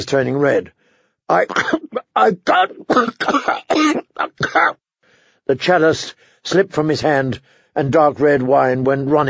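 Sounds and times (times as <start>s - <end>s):
speech: 0.0s - 4.8s, 5.5s - 9.2s
person performing a fit of coughing and choking: 1.3s - 4.8s.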